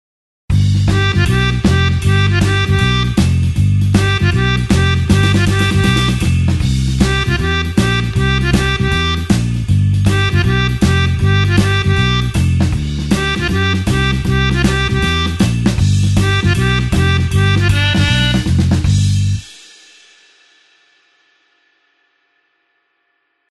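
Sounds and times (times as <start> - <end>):
blues harp shuffle in G: 0.7 - 19.5.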